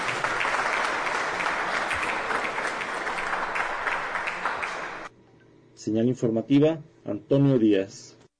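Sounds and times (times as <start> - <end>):
large audience applauding: 0.0 - 5.1
speech: 5.8 - 8.2.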